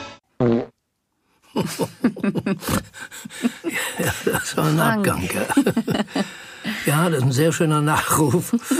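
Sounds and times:
raspy sputtering fart-like sounds: 0.4s - 0.7s
loud buzzy fart noises: 0.4s - 0.8s
laughter: 1.5s - 8.7s
speech: 1.6s - 8.7s.

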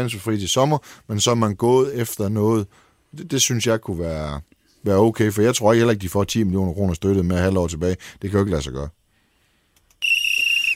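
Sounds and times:
speech: 0.0s - 9.0s
loud shrill referee whistle blast: 10.0s - 10.7s.

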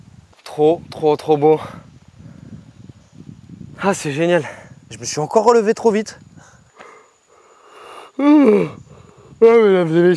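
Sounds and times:
speech: 0.6s - 1.8s, 3.8s - 6.2s, 8.2s - 8.8s, 9.4s - 10.1s
quiet breathy human yawn: 7.8s - 9.0s.

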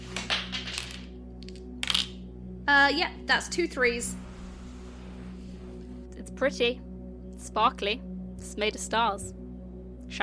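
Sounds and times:
two dice rolling across a hard surface: 0.1s - 2.2s
low steady hum: 1.1s - 10.2s
speech: 2.7s - 4.3s, 6.4s - 9.4s.

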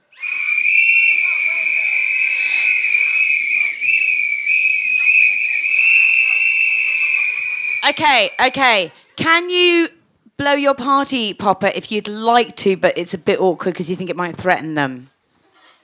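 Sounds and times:
audience members blowing whistles: 0.0s - 8.6s
faint crowd noise: 0.0s - 15.8s
speech: 7.9s - 15.1s.

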